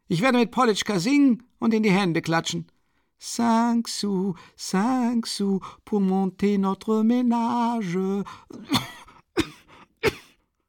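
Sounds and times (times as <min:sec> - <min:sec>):
speech: 0:00.1 - 0:10.2
woman coughing doubled over: 0:08.5 - 0:10.4.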